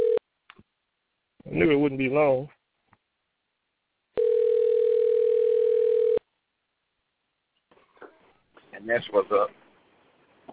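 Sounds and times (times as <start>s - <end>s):
steady electronic telephone tone of an incoming caller: 0.0s - 0.2s, 4.2s - 6.2s
speech: 1.6s - 2.6s, 8.8s - 9.6s.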